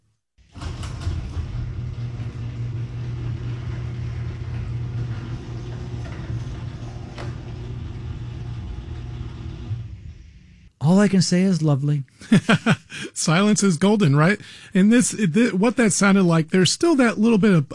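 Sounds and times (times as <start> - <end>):
garage door on nylon rollers opening: 0.4 - 10.7
speech: 10.9 - 17.7
laughter: 12.2 - 13.2.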